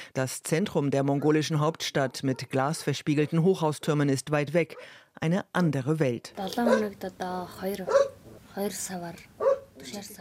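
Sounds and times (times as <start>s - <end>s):
speech: 0.1s - 10.1s
dog barking at a ger settlement on the edge of Ulaanbaatar, Mongolia: 2.2s - 2.9s, 6.6s - 6.9s, 7.9s - 8.2s, 9.4s - 10.1s.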